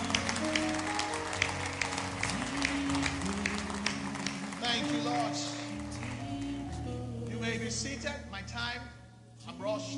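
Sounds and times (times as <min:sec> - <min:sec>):
audience clapping: 0:00.0 - 0:06.9
sustained low musical tones: 0:00.0 - 0:09.9
speech: 0:08.0 - 0:09.9.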